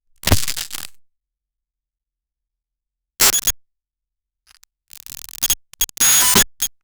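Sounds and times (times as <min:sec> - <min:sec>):
analog camera sound: 0:03.2 - 0:03.5, 0:05.0 - 0:06.7.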